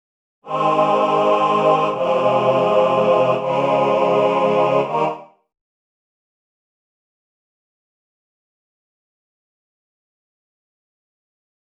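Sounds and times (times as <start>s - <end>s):
classical male ensemble singing: 0.5s - 5.4s.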